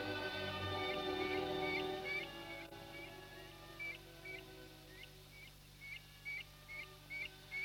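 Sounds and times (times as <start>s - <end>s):
redshank piping calls at Fokstumyra bog: 0.2s - 7.6s.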